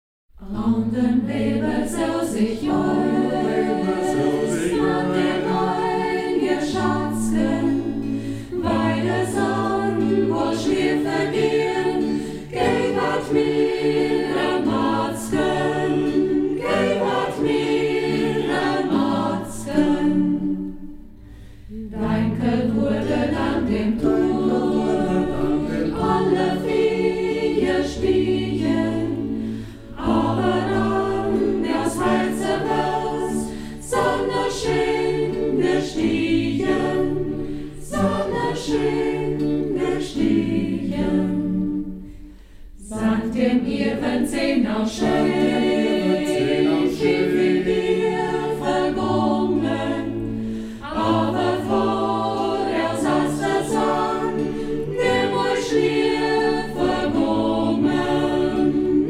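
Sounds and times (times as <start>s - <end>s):
guitar group music: 0.7s - 42.1s, 43.1s - 59.0s.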